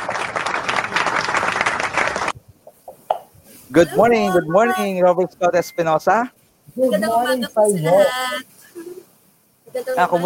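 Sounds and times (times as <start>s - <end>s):
audience applause at a Boy Scouts event: 0.0s - 2.4s
speech: 3.7s - 8.6s, 9.7s - 10.2s.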